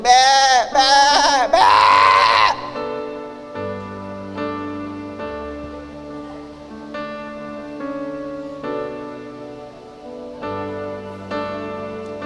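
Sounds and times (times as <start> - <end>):
sheep bleating: 0.0 - 2.8
soft sustained musical tones: 2.6 - 12.2.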